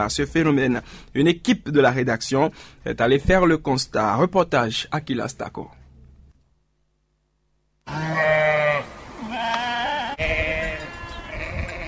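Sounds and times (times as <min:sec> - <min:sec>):
speech: 0:00.0 - 0:05.8
goats bleating in the streets of Parako: 0:07.9 - 0:11.8.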